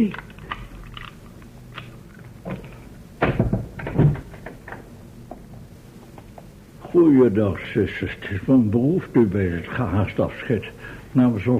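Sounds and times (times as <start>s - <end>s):
speech: 0.0s - 0.2s, 7.0s - 11.5s
door rattling as it swings open: 3.2s - 4.9s.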